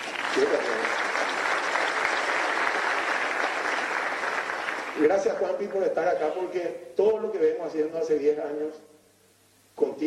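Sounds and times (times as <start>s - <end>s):
audience applause with many hands clapping: 0.0s - 5.3s
speech: 0.4s - 1.0s, 5.0s - 8.9s.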